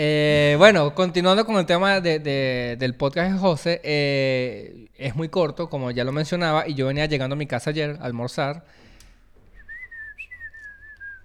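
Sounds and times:
speech: 0:00.0 - 0:08.9
person whistling a steady wavering tune while walking: 0:09.6 - 0:11.2.

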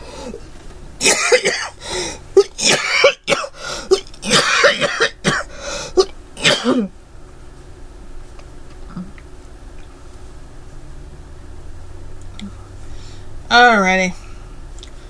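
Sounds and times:
harsh wet coughing up mucus: 0:01.0 - 0:06.9
speech: 0:13.6 - 0:14.2.

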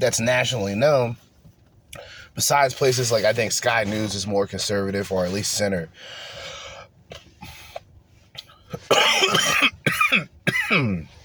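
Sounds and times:
speech: 0:00.0 - 0:01.3, 0:01.9 - 0:06.5, 0:08.7 - 0:11.1
man breathing: 0:01.9 - 0:02.4, 0:05.9 - 0:08.8
man coughing harshly after smoking a blunt: 0:08.4 - 0:11.1
man clearing throat: 0:08.7 - 0:11.1.

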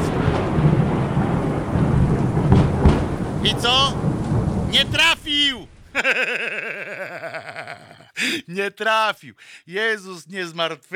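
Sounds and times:
loud rumbling thunder clap: 0:00.0 - 0:06.0
steady rain: 0:00.0 - 0:08.4
speech: 0:03.5 - 0:04.0, 0:04.7 - 0:10.9
laughter: 0:05.9 - 0:08.4.

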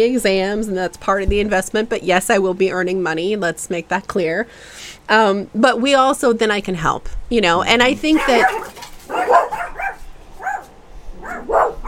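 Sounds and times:
speech: 0:00.0 - 0:09.4
dog barking at neighborhood dogs: 0:08.1 - 0:11.8.

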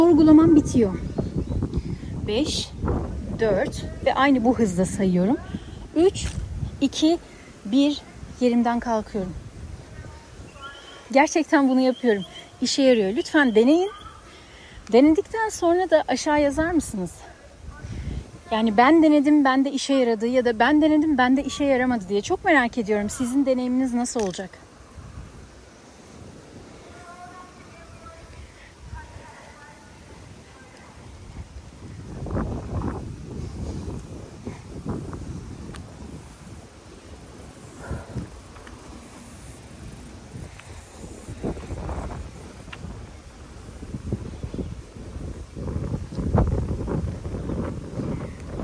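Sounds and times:
wind buffeting a microphone outdoors in low rumbling gusts: 0:00.0 - 0:48.6
speech: 0:00.2 - 0:01.2, 0:02.3 - 0:09.4, 0:11.1 - 0:14.0, 0:14.9 - 0:17.2, 0:18.5 - 0:24.6
faint whistling tone: 0:10.5 - 0:11.2, 0:11.8 - 0:14.2.

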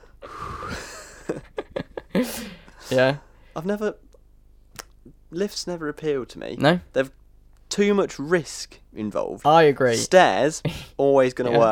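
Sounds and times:
voice imitating heavy mouth panting: 0:00.2 - 0:01.0, 0:02.1 - 0:02.9
speech: 0:02.2 - 0:04.1, 0:05.3 - 0:11.7.

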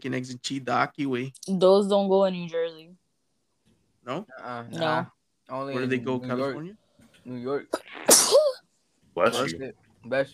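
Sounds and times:
speech: 0:00.0 - 0:02.8, 0:04.0 - 0:08.5, 0:09.2 - 0:10.3
person sneezing: 0:08.0 - 0:08.6.

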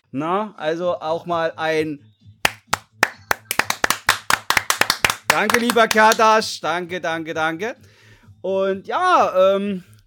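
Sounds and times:
speech: 0:00.1 - 0:02.1, 0:05.3 - 0:09.9
crisp hand claps: 0:02.4 - 0:06.4.

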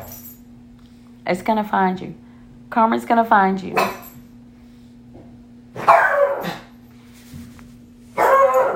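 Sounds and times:
speech: 0:01.3 - 0:03.9
pet dog barking: 0:03.7 - 0:04.1, 0:05.7 - 0:06.7, 0:08.1 - 0:08.7.

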